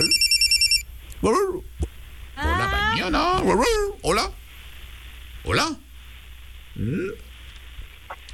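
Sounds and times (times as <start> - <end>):
telephone ringing with an incoming call: 0.0 - 0.8
speech: 1.2 - 1.7, 3.0 - 4.4, 5.4 - 5.8, 6.8 - 7.2.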